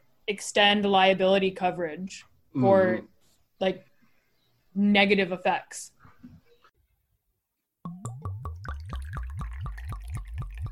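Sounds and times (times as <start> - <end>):
speech: 0.3 - 3.9, 4.8 - 6.4
wine glugging from a bottle into a glass: 7.9 - 10.7.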